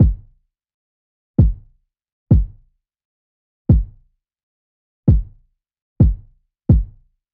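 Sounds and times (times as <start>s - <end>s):
EDM pop kit kick drum: 0.0s - 0.4s, 1.4s - 1.7s, 2.3s - 2.6s, 3.7s - 4.0s, 5.1s - 5.4s, 6.0s - 7.1s.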